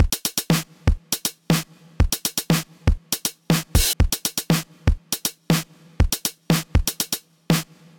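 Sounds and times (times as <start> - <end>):
DMX drum machine beat: 0.0 - 7.9.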